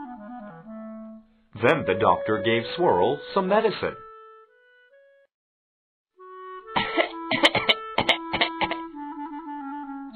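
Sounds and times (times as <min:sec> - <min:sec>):
speech: 0:01.6 - 0:04.0
harsh hacking coughs: 0:06.8 - 0:08.9.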